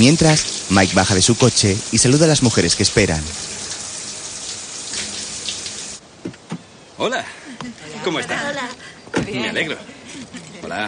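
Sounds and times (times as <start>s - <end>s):
speech: 0.0s - 3.5s, 9.3s - 10.0s, 10.7s - 10.8s
shower running in a bathroom: 0.0s - 6.0s.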